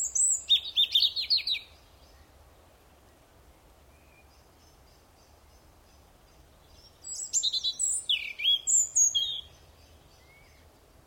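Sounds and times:
European robin singing, Erithacus rubecula: 0:00.0 - 0:11.0.

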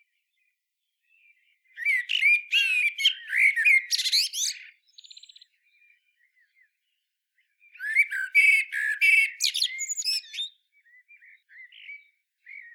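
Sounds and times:
Common blackbird, Turdus merula, singing: 0:01.8 - 0:05.5, 0:07.7 - 0:12.7.

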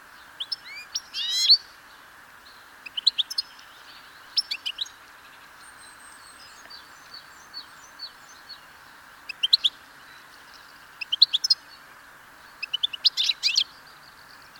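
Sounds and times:
European goldfinch Carduelis carduelis twittering calls: 0:02.8 - 0:04.9, 0:06.2 - 0:11.6, 0:12.4 - 0:14.5.

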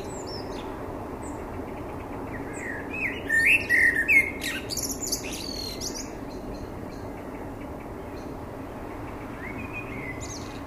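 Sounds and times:
Common blackbird Turdus merula singing fluty whistled notes: 0:00.0 - 0:07.2, 0:09.4 - 0:10.6.

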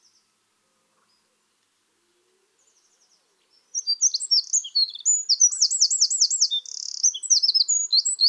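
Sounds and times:
Eurasian wren singing: 0:03.1 - 0:08.2.

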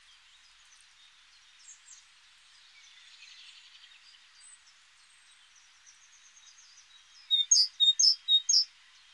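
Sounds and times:
light steady background hiss: 0:00.0 - 0:09.1
Great tit Parus major high chirps: 0:07.3 - 0:08.7.

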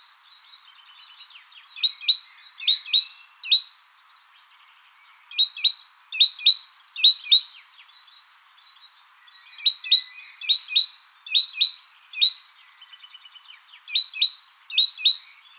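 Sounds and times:
great tit Parus major giving quick high clipped notes: 0:01.8 - 0:03.6, 0:05.0 - 0:07.5, 0:09.5 - 0:12.4, 0:13.8 - 0:15.5.

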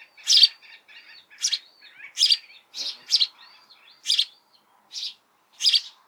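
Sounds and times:
House sparrow Passer domesticus giving loud clipped chirps: 0:00.0 - 0:06.0.

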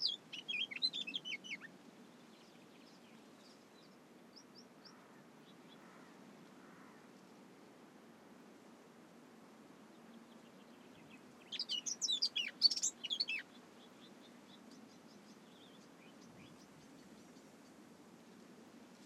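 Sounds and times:
Eurasian blackcap Sylvia atricapilla warbling song: 0:00.0 - 0:01.7, 0:11.1 - 0:16.8.

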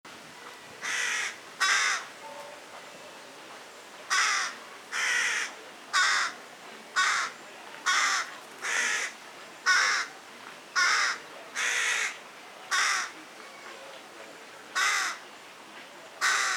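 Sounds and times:
quiet background noise: 0:00.1 - 0:16.5
carrion crow cawing: 0:00.8 - 0:02.1, 0:04.1 - 0:06.3, 0:07.0 - 0:07.3, 0:07.9 - 0:09.1, 0:09.7 - 0:10.1, 0:10.8 - 0:13.1, 0:14.8 - 0:15.2, 0:16.2 - 0:16.5.

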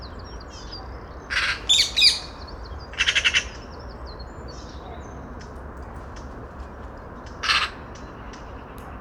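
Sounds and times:
Eurasian magpie Pica pica rattling chatter: 0:01.3 - 0:02.4.

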